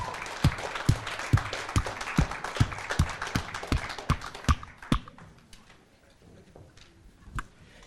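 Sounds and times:
crowd applauding a worship band at a church worship evening: 0:00.0 - 0:05.2
rhythmic clapping: 0:00.0 - 0:05.3.

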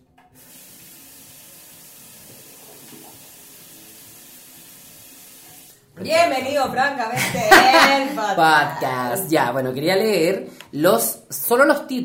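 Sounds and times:
water tap running in a home bathroom: 0:00.2 - 0:06.4
speech: 0:06.0 - 0:12.0
laughter: 0:06.1 - 0:09.0.

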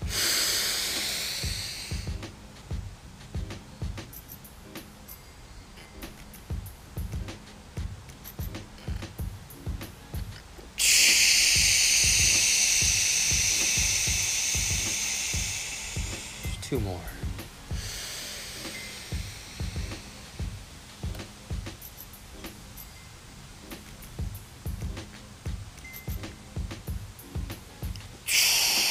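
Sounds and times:
slow deep breathing from a breathing exercise: 0:00.0 - 0:02.3, 0:10.8 - 0:16.6, 0:17.2 - 0:20.5, 0:28.3 - 0:28.8
low pulsing beat: 0:00.0 - 0:05.2, 0:05.8 - 0:22.9, 0:23.6 - 0:28.8.

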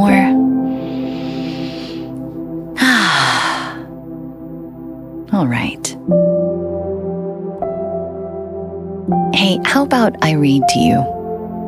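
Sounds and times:
steady low tone: 0:00.0 - 0:11.6
deep relaxing breaths: 0:00.6 - 0:04.0
speech: 0:09.7 - 0:11.2.

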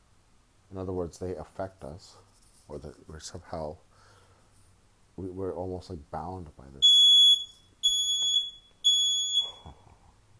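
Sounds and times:
speech: 0:00.7 - 0:03.9, 0:05.2 - 0:07.0
smoke alarm beeping with long shrill tones: 0:06.8 - 0:09.8.

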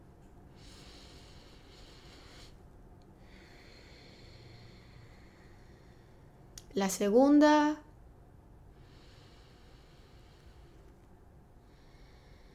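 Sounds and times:
faint steady hum: 0:00.0 - 0:12.5
slow deep breath during guided breathing: 0:00.5 - 0:06.5, 0:08.7 - 0:12.5
speech: 0:06.8 - 0:07.8.

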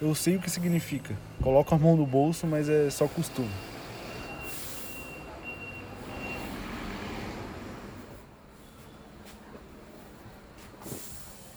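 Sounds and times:
speech: 0:00.0 - 0:03.7
bus engine droning low as it arrives at a stop: 0:00.0 - 0:11.5
bus air brakes hissing: 0:02.9 - 0:07.4, 0:10.6 - 0:11.5.

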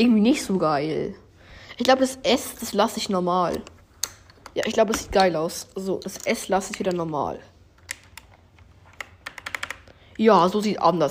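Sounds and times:
speech: 0:00.0 - 0:01.2, 0:01.8 - 0:03.8, 0:04.6 - 0:07.5, 0:10.2 - 0:11.0
typing on a new computer keyboard: 0:08.9 - 0:10.0.

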